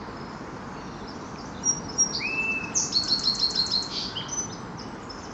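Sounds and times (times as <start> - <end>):
sparrow singing on an ocean shore: 0.2 - 5.3.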